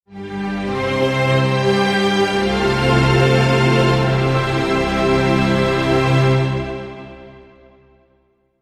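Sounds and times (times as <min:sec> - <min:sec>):
orchestral logo jingle: 0:00.1 - 0:07.6.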